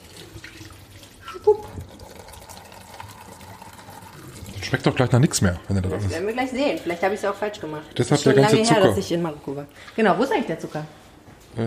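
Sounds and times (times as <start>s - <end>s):
tea rinse water poured into a sink drain: 0.0s - 8.5s
speech: 1.4s - 1.8s, 4.7s - 11.0s.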